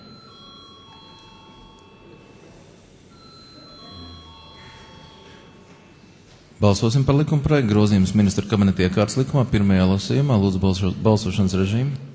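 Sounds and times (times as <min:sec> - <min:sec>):
parliament chamber voting bell ringing: 0:00.0 - 0:07.3
low murmur of room noise: 0:00.0 - 0:12.1
speech: 0:06.6 - 0:12.1.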